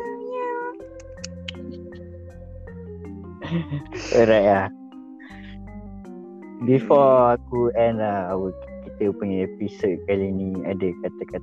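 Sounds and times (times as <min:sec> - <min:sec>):
cat meowing: 0:00.0 - 0:01.0
laughter: 0:03.4 - 0:04.6, 0:06.6 - 0:07.4
speech: 0:03.5 - 0:04.8, 0:06.6 - 0:11.4.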